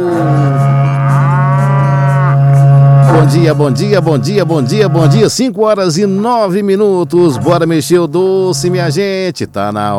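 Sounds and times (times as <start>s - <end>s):
berrante cattle horn blown with a low buzzy note: 0.0s - 5.4s, 8.3s - 9.1s
speech: 3.3s - 9.9s.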